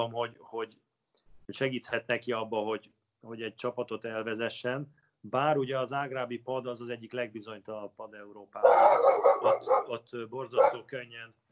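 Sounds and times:
speech: 0:00.0 - 0:00.9, 0:01.5 - 0:11.4
dog barking: 0:08.6 - 0:10.0, 0:10.6 - 0:10.9.

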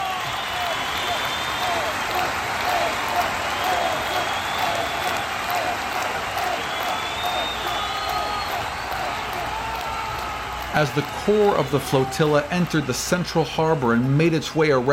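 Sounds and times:
whistles and whoops: 0:00.0 - 0:10.8
large crowd cheering and clapping: 0:00.0 - 0:14.9
speech: 0:10.8 - 0:14.9.

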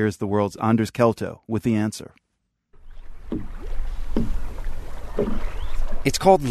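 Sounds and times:
speech: 0:00.0 - 0:02.2, 0:03.3 - 0:03.5, 0:05.2 - 0:06.5
breeze: 0:02.8 - 0:06.5
rowboat oars dipping and splashing in calm lake water: 0:02.8 - 0:06.5.

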